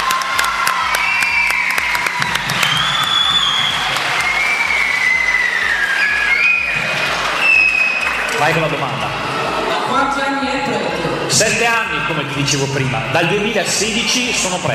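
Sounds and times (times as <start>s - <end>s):
cheers and whoops: 0.0s - 8.5s
applause from a sizable crowd: 0.0s - 12.8s
speech: 8.4s - 9.0s, 11.3s - 14.7s.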